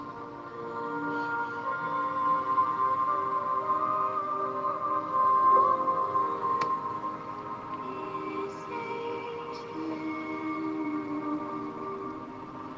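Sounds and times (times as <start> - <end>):
soft sustained ambient meditation music with calm drone: 0.0 - 12.7.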